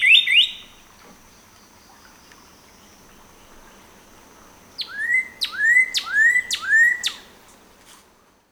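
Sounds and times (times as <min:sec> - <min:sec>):
northern cardinal singing slurred whistles: 0:04.8 - 0:07.3.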